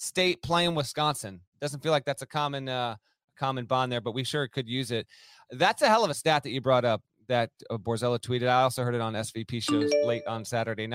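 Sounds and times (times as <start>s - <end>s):
speech: 0.1s - 10.9s
computer alert chime: 9.7s - 10.5s.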